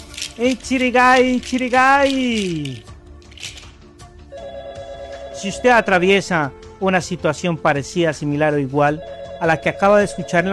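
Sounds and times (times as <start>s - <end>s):
clattering: 0.0s - 3.8s
speech: 0.4s - 2.9s, 5.4s - 10.5s
telephone ringing with an incoming call on a call-in consultation line: 4.3s - 6.0s, 9.0s - 10.5s.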